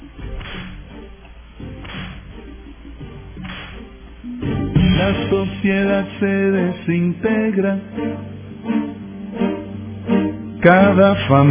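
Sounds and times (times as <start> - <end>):
whip cracks: 0.3 - 0.9, 1.8 - 2.3, 3.4 - 3.8
speech: 5.0 - 8.9, 10.6 - 11.4.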